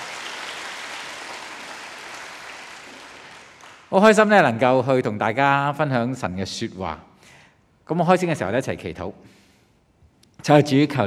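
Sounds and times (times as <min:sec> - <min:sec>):
church congregation applauding at a worship service: 0:00.0 - 0:04.2
speech: 0:03.9 - 0:07.1, 0:07.9 - 0:09.4, 0:10.4 - 0:11.0.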